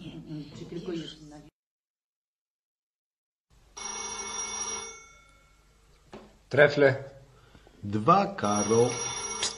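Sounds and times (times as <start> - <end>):
telephone bell ringing: 3.8 - 5.7, 8.4 - 9.5
speech: 6.5 - 7.1, 7.8 - 9.5.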